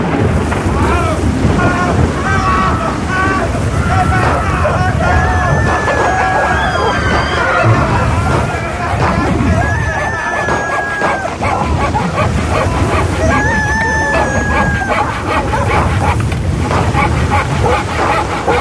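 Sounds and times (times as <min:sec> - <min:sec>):
churning sea water around a ship: 0:00.0 - 0:18.5
loud roaring wind in a storm at sea: 0:00.0 - 0:18.5
shouting voices aboard a ship: 0:00.0 - 0:18.5
laughter: 0:00.4 - 0:18.5.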